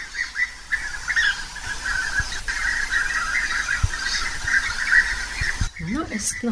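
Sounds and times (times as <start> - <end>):
European bee-eaters calling in chorus: 0.0 - 6.5
faint low noise: 0.0 - 6.5
speech: 6.2 - 6.5.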